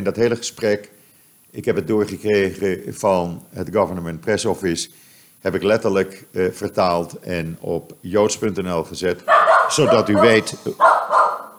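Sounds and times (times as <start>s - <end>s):
speech: 0.0s - 11.4s
dog barking: 9.2s - 11.5s.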